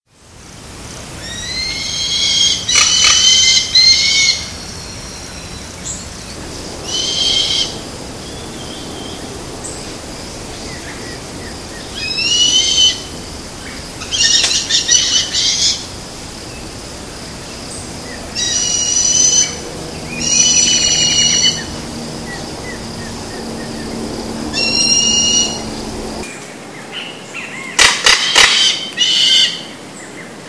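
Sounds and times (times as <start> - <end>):
Caracara plancus southern crested caracara calling: 1.2 - 26.2, 27.4 - 29.8.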